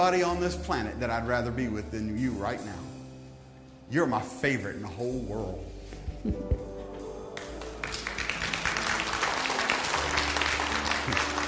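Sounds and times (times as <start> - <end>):
speech: 0.0 - 3.0, 3.9 - 6.7
audience clapping: 7.4 - 11.4.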